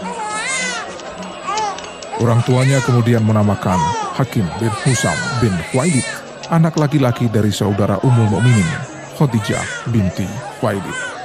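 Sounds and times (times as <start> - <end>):
faint murmur: 0.0 - 11.2
newborn baby crying: 2.2 - 6.2, 8.0 - 11.2
speech: 2.2 - 11.1.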